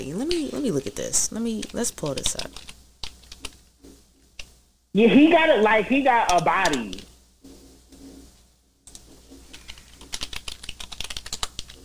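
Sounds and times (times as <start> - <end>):
room hum: 0.0 - 11.8
speech: 0.2 - 2.7, 5.0 - 7.0
typing on a computer keyboard: 1.6 - 3.6, 8.9 - 11.8.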